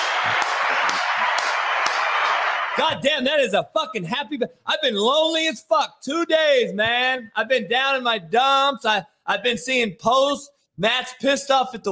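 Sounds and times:
sharp hand claps: 0.0 - 3.0
speech: 2.8 - 11.9.

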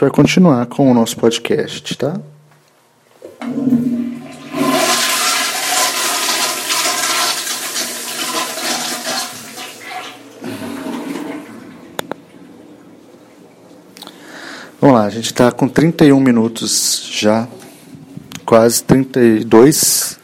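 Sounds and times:
speech: 0.0 - 2.4, 3.4 - 3.9, 14.8 - 17.6, 18.5 - 20.2
toilet flushing: 3.4 - 13.0.

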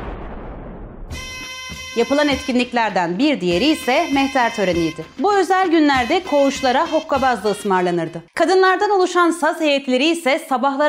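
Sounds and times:
deep rolling cannon fire: 0.0 - 1.3
speech: 2.0 - 10.8.

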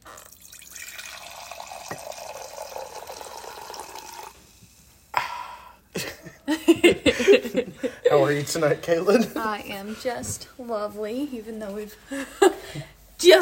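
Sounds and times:
wine pouring from a box spout into a mug: 0.0 - 4.7
laughter: 6.0 - 8.6
speech: 6.8 - 13.4.

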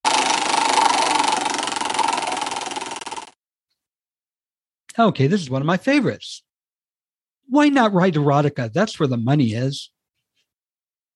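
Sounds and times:
prize wheel spinning: 0.1 - 3.4
speech: 5.0 - 6.5, 7.5 - 10.0.

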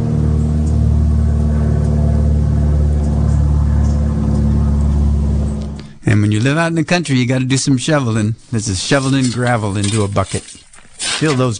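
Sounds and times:
airplane flying overhead with low engine drone: 0.0 - 6.5
speech: 6.1 - 10.6, 11.2 - 11.5.

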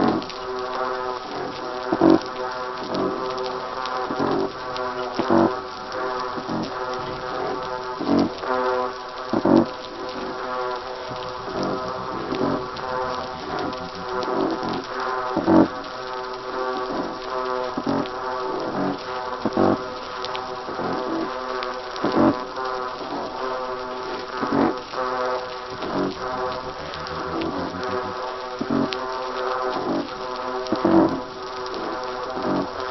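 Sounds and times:
constant underwater crackling background off Port Hedland: 0.0 - 32.8
black-spotted croaker foghorn-like calls underwater off Port Hedland: 10.1 - 15.8, 25.6 - 29.0.

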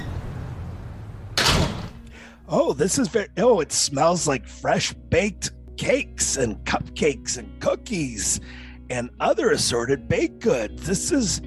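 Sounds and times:
door opening with a loud whoosh and rattle: 0.0 - 2.1
speech: 2.5 - 11.4.

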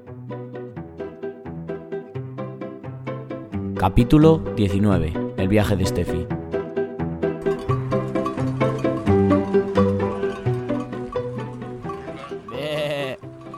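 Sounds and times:
upbeat instrumental music with plucked notes: 0.0 - 13.5
speech: 3.8 - 6.4
loud wavering sheep bleat: 11.9 - 13.3.

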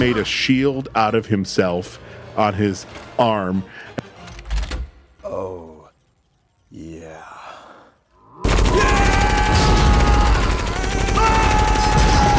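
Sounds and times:
speech: 0.0 - 3.9
rapid gunfire in a sci-fi action film scene: 8.4 - 12.3.

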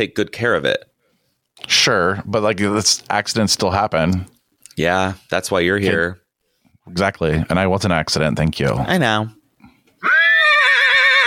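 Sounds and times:
speech: 0.0 - 0.9, 1.6 - 6.2, 6.9 - 9.4
person imitating a horse neighing: 10.0 - 11.2.

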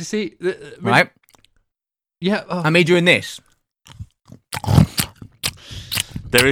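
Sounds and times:
speech: 0.0 - 1.2, 2.2 - 5.0, 6.3 - 6.5
person eating with wet chewing and crunching: 1.2 - 1.6, 3.4 - 6.5.

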